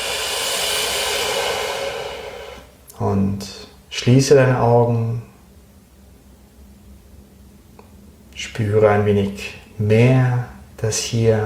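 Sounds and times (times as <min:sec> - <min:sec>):
long deep exhalation during a guided breathing exercise: 0:00.0 - 0:02.7
speech: 0:03.0 - 0:05.3, 0:08.6 - 0:11.4.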